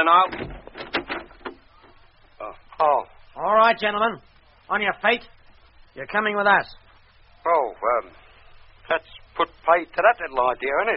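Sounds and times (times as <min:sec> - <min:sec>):
speech: 0:00.0 - 0:00.5, 0:02.8 - 0:05.4, 0:06.0 - 0:06.8, 0:07.4 - 0:08.2, 0:08.9 - 0:10.9
door opening with wooden clunks: 0:00.2 - 0:02.0.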